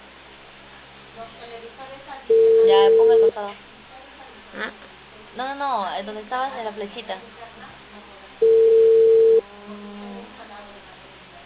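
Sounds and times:
quiet telephone line noise: 0.0 - 4.3, 5.1 - 11.4
speech: 1.2 - 3.7, 4.5 - 7.6
telephone ringback tone of an unanswered call: 2.3 - 3.3, 8.4 - 9.4.

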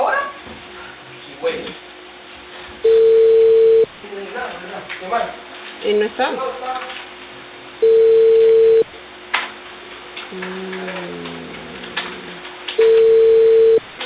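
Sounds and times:
telephone ringing tone beeps while placing a call: 2.9 - 3.9, 7.8 - 8.8, 12.8 - 13.8
speech: 5.9 - 6.8
faint tonal blips: 7.8 - 8.8, 12.8 - 13.8.

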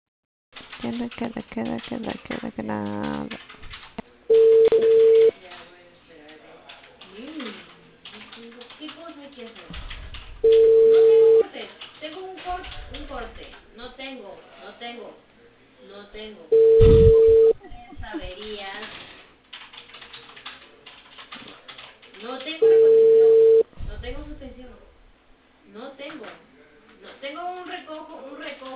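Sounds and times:
speech: 0.8 - 3.6, 12.5 - 19.0
telephone ringback tones on a narrow phone line: 4.3 - 5.3, 10.4 - 11.4, 16.5 - 17.6, 22.6 - 23.6.

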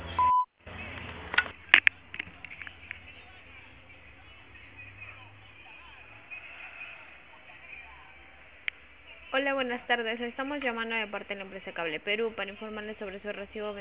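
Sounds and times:
faint noise: 0.0 - 13.8
voicemail beep: 0.2 - 0.5
speech: 9.4 - 13.8.

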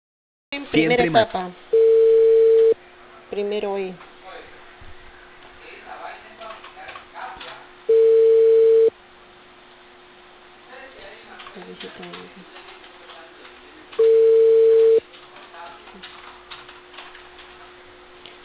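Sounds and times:
speech: 0.7 - 1.8, 3.3 - 4.1, 11.6 - 12.7
telephone ringback tone while placing a call: 1.8 - 2.8, 7.9 - 8.9, 14.0 - 15.0.

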